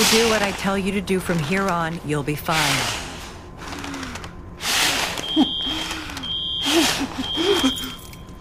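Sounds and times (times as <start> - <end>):
speech: 0.0 - 3.0
fire alarm beeping in long shrill tones: 5.2 - 8.4.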